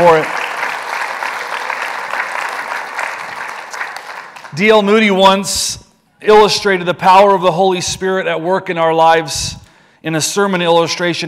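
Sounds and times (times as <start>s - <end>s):
speech: 0.0s - 0.4s, 4.6s - 11.2s
large audience applauding: 0.0s - 4.6s.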